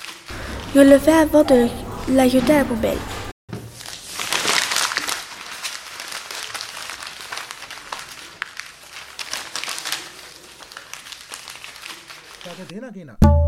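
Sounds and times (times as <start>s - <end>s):
sheet of paper being crumpled: 0.0s - 1.4s, 2.1s - 12.8s
speech: 0.7s - 3.1s, 12.7s - 13.3s.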